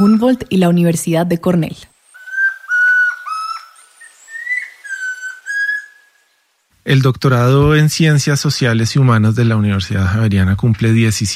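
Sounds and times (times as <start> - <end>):
speech: 0.0 - 1.9, 6.8 - 11.3
chestnut-crowned antpitta singing clear whistled notes: 2.1 - 6.3.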